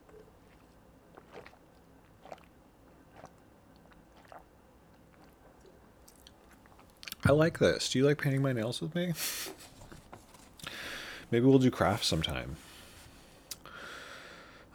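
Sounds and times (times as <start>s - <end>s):
person sipping water: 0.0s - 7.2s, 9.2s - 11.3s, 12.2s - 14.4s
soft wet mouth clicks and gulps: 0.0s - 7.3s, 9.6s - 11.2s, 13.5s - 13.7s
speech: 7.2s - 9.7s, 11.3s - 12.7s.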